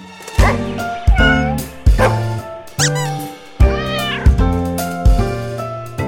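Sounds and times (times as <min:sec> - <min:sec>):
cat meowing: 0:00.4 - 0:04.4.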